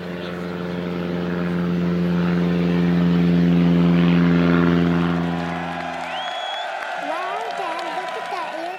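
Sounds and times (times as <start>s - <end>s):
propeller airplane droning overhead: 0.0s - 8.7s
birds chirping: 5.5s - 8.7s.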